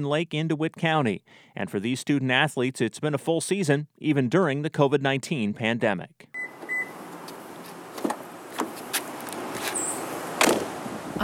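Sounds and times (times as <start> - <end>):
speech: 0.0 - 6.3
outdoor noise on a university campus: 6.4 - 11.2
cars idling and pulling up to the undergraduate library: 6.6 - 11.2.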